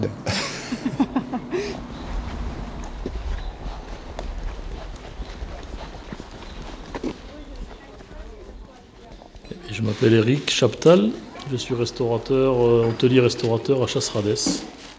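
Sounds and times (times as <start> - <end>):
speech: 0.0 - 0.4, 9.8 - 14.8
laughter: 0.0 - 1.9
low outdoor rumble: 0.9 - 9.0
donkey hooves clip-clopping over hard ground: 1.8 - 9.9.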